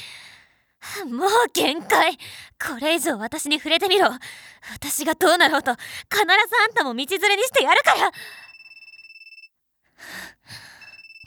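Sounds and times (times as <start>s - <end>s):
speech: 1.0s - 8.5s
electronic phone ringtone ringing: 8.4s - 9.5s, 10.8s - 11.2s.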